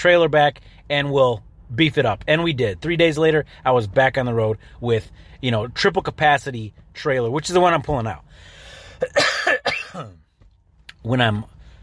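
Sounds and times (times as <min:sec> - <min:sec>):
speech: 0:00.0 - 0:09.2, 0:10.0 - 0:10.2, 0:11.0 - 0:11.6
person coughing with a throaty rasp: 0:08.9 - 0:10.3.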